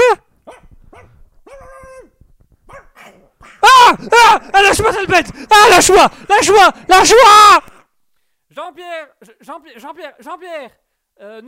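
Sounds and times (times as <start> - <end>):
21-year-old chihuahua barking and whining: 0.4 - 2.1, 2.7 - 3.6
speech: 3.9 - 7.7, 8.5 - 11.4.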